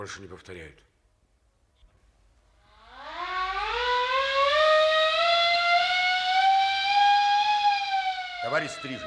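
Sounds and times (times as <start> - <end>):
speech: 0.0 - 0.9, 8.4 - 9.0
ship's siren calling the crew to assembly: 2.6 - 9.0.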